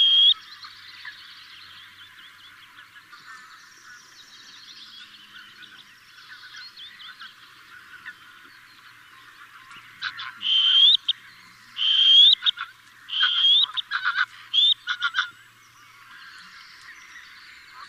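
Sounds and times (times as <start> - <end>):
little grebe calling: 0.0 - 17.8.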